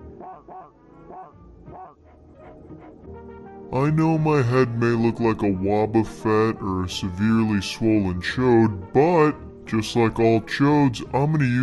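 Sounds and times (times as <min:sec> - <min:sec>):
robot dog barking in sharp yaps: 0:00.2 - 0:02.0
speech: 0:03.7 - 0:11.6.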